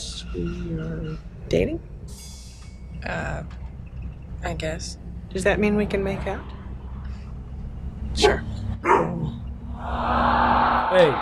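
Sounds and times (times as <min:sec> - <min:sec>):
speech: 0:00.4 - 0:02.2, 0:03.0 - 0:03.6, 0:04.4 - 0:06.6, 0:08.2 - 0:11.1
dog barking sharply: 0:08.2 - 0:09.4.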